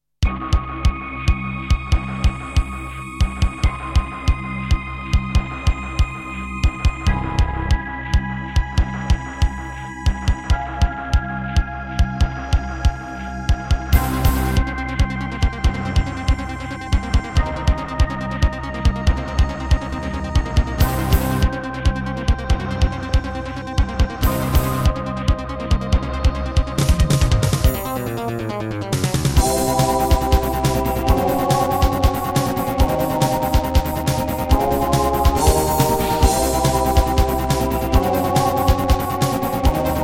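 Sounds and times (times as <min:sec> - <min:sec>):
Roland SC-7 sound module music: 0:01.0 - 0:40.0.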